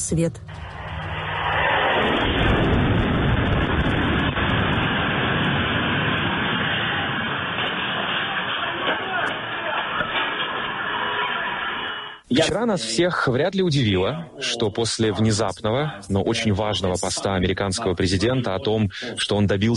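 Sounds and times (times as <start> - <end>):
speech: 0.1 - 0.8, 2.2 - 2.7, 12.3 - 19.7
jet-powered Shahed attack drone engine roaring overhead: 0.4 - 12.2.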